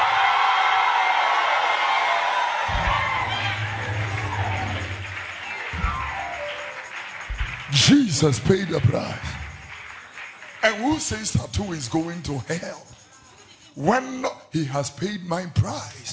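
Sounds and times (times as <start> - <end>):
large audience screaming and cheering: 0.0 - 11.5
low rumbling undertone: 2.7 - 6.6
speech: 8.2 - 9.4, 10.6 - 12.9, 13.8 - 16.1.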